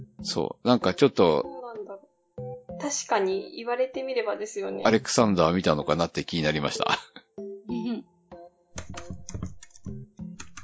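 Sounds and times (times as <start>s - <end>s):
speech: 0.2s - 1.6s, 2.8s - 7.2s
person typing on a computer keyboard: 8.8s - 10.6s.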